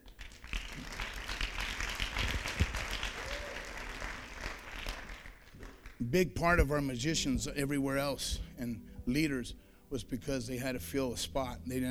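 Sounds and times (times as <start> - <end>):
crowd applauding: 0.0 - 6.1
speech: 6.0 - 11.8.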